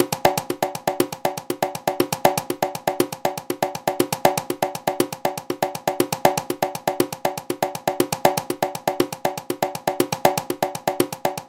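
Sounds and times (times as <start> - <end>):
songo bota conga playing: 0.0 - 11.4.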